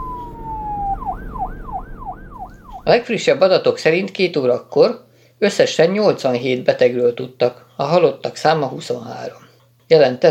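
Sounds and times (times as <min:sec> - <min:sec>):
police car engine rumbling: 0:00.0 - 0:02.9
police car siren wailing: 0:00.0 - 0:03.1
speech: 0:02.9 - 0:10.2.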